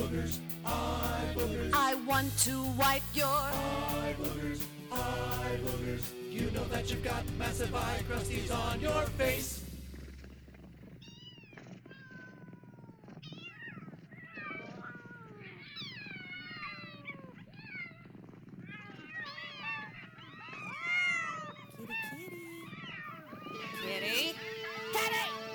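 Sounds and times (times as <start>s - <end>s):
speech: 0.2s - 9.6s
cat meowing insistently: 11.0s - 18.1s, 18.7s - 25.4s.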